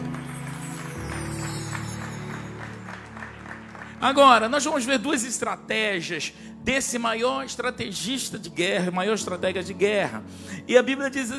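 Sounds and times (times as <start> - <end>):
audience clapping: 0.0 - 5.5
speech: 4.0 - 11.3.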